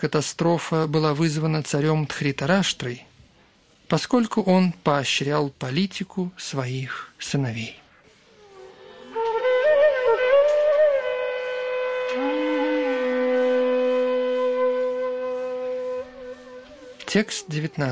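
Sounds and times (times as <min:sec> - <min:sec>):
speech: 0:00.0 - 0:03.1, 0:03.9 - 0:07.8, 0:17.1 - 0:17.9
several conch shells blown at once: 0:08.5 - 0:17.1.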